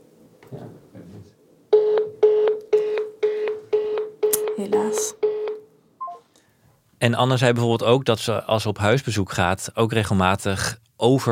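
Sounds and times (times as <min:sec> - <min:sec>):
telephone ringing tone pulses: 0:01.7 - 0:06.2
speech: 0:04.6 - 0:05.2, 0:07.0 - 0:11.3.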